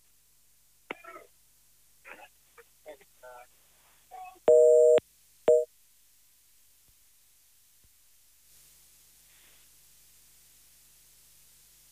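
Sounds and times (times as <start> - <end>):
telephone line tone beeps: 4.5 - 5.7.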